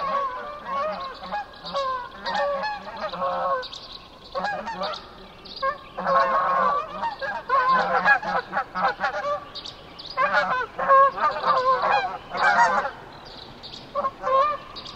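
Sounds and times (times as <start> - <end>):
Canada geese honking: 0.0 - 13.1, 13.9 - 14.9.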